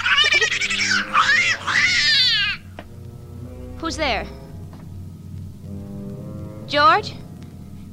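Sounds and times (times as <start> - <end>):
cat yowling, long loud wavering yowl: 0.0 - 2.7
speech: 3.9 - 4.4, 6.7 - 7.2.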